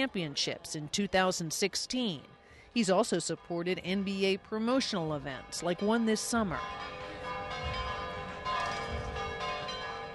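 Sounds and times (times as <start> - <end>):
speech: 0.0 - 7.0
church bells tolling in Rome's historic center: 3.1 - 10.1.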